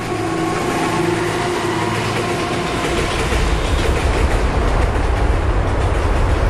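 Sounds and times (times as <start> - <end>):
train rumbling past on railway tracks: 0.0 - 6.4.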